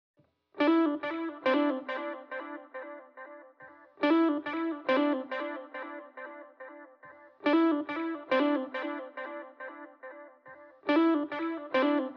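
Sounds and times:
guitar playing in A minor at 140 BPM: 0.6 - 12.1.

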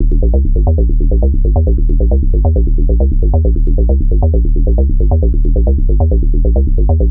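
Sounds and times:
techno bass loop in D sharp: 0.0 - 7.0.

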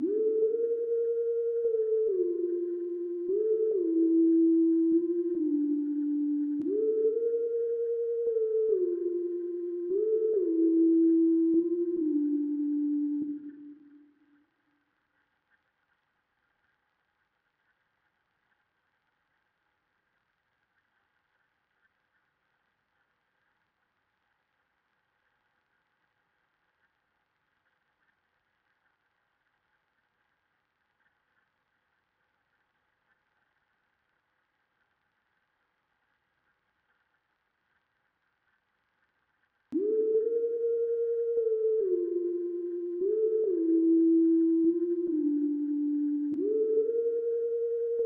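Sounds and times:
D minor lead synth melody at 145 BPM: 0.0 - 13.8, 39.8 - 48.0.

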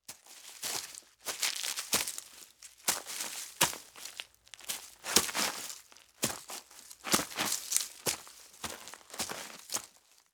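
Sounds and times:
loud footsteps crunching leaves and grass: 0.1 - 10.3.

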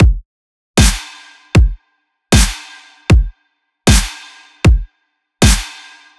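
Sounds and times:
deathstep EDM drum beat: 0.0 - 0.2, 0.8 - 1.0, 1.6 - 1.8, 2.4 - 3.3, 3.9 - 4.8, 5.4 - 5.7.

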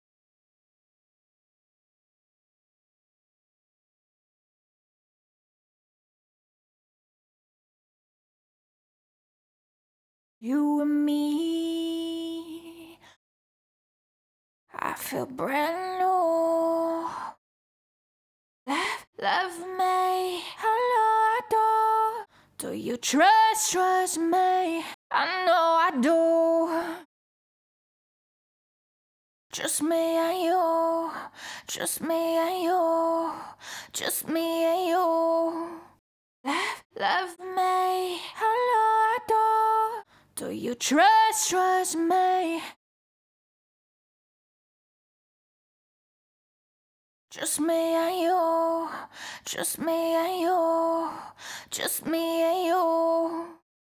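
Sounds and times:
clean a cappella pop vocals: 10.4 - 13.1, 14.7 - 17.4, 18.7 - 27.1, 29.5 - 42.8, 47.3 - 53.6.

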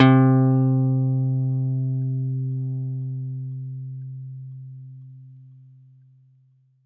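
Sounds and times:
acoustic guitar pluck in C: 0.0 - 5.0.

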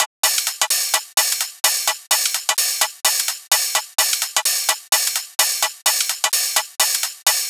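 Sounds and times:
house hi-hat drum loop: 0.0 - 7.4.

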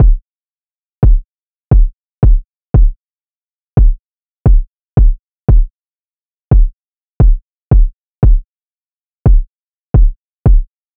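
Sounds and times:
kick drum loop: 0.0 - 0.2, 1.0 - 3.0, 3.8 - 5.7, 6.5 - 8.5, 9.3 - 10.9.

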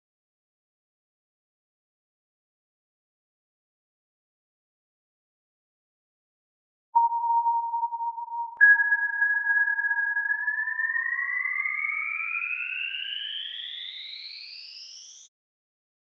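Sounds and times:
synth pluck melody with riser in D sharp minor: 7.0 - 13.0.

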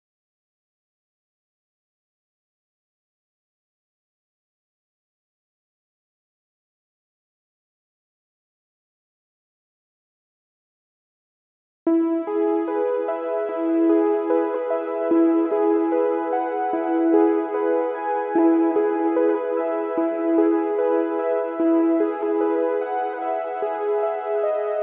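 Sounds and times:
saw synth melody loop in C sharp minor at 74 BPM: 12.1 - 24.8.

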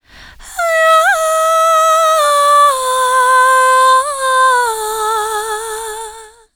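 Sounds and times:
vocals in A minor: 0.4 - 6.5.

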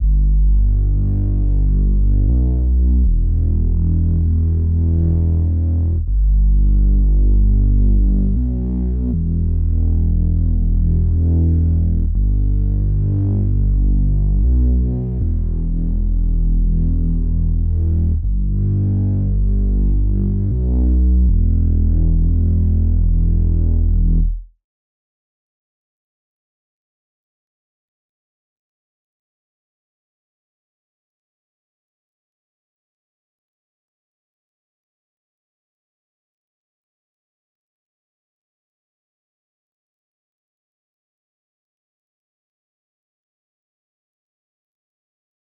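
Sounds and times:
RnB bass melody loop: 0.0 - 24.5.

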